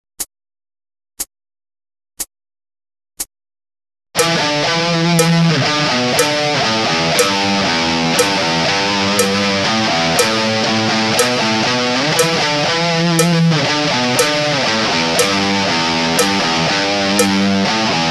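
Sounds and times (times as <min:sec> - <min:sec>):
slow-motion guitar riff: 0:04.2 - 0:18.0.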